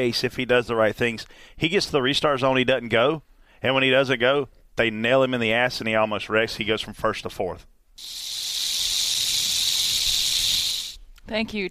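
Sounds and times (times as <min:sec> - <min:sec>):
speech: 0:00.0 - 0:08.3, 0:11.3 - 0:11.6
snake hiss sound effect: 0:08.0 - 0:11.0.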